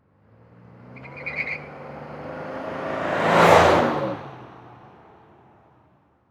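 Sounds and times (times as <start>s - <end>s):
Monte Carlo car driving by fast: 0.5s - 4.8s
Monte Carlo car squeal: 1.0s - 1.8s.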